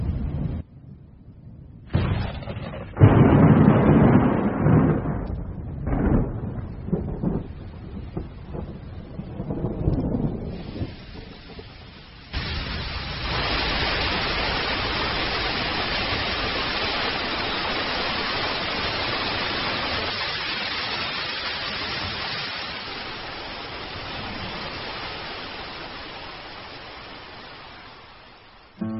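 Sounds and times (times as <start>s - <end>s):
low rumbling: 0.0s - 17.9s
heavy summer monsoon downpour in saguaro cactus desert: 2.0s - 28.9s.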